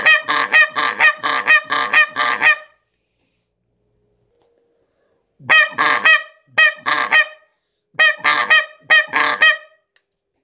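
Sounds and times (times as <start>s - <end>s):
Canada goose honking: 0.0s - 2.8s, 5.4s - 9.8s.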